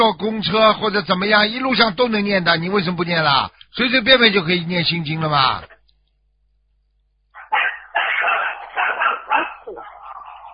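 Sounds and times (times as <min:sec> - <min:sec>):
speech: 0:00.1 - 0:05.7
dog barking at a home: 0:07.4 - 0:10.5.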